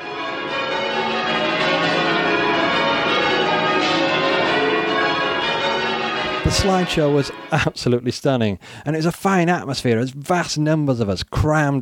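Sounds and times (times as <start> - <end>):
church bells ringing a change-ringing peal: 0.0 - 8.1
speech: 6.5 - 11.7.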